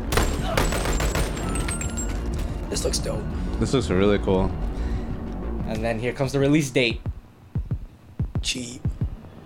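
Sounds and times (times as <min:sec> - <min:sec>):
video game gunfire: 0:00.0 - 0:01.8
bullets striking and passing through a crate: 0:00.0 - 0:02.5
speech: 0:02.7 - 0:04.7, 0:05.7 - 0:07.1, 0:08.4 - 0:08.9.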